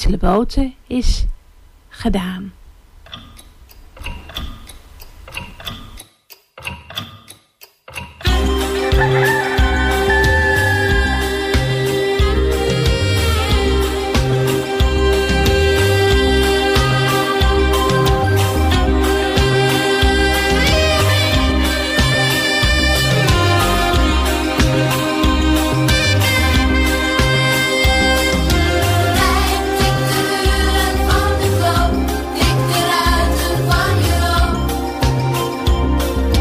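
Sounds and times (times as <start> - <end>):
speech: 0.1 - 1.3, 2.0 - 3.2
clock ticking in sharp clicks: 3.0 - 9.1
loud music with a thumping beat: 5.3 - 36.3.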